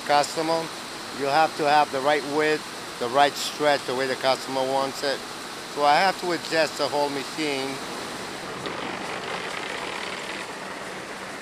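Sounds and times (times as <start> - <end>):
speech: 0.1 - 8.0
truck engine droning inside a mill: 7.9 - 11.4.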